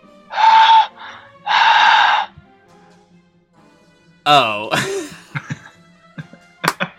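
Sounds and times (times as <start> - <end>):
person imitating heavy breathing: 0.3 - 2.4, 4.8 - 5.2
speech: 4.2 - 4.9
laughter: 4.4 - 6.9.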